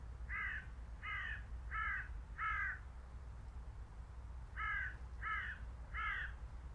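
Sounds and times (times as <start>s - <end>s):
steady low rumble: 0.0s - 6.7s
bird giving harsh cawing notes: 0.3s - 2.9s, 4.6s - 6.4s.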